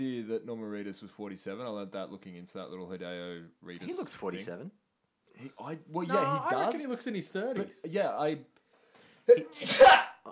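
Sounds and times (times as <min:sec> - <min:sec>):
speech: 0:00.0 - 0:08.6, 0:09.3 - 0:10.1
person sneezing: 0:09.3 - 0:10.2.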